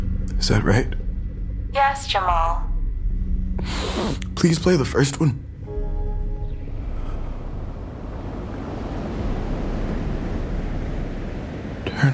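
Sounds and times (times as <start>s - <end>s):
speech: 0.4s - 1.0s, 1.7s - 2.7s, 3.6s - 5.4s
ocean surf waves breaking: 5.7s - 12.1s
wind noise: 6.4s - 12.1s.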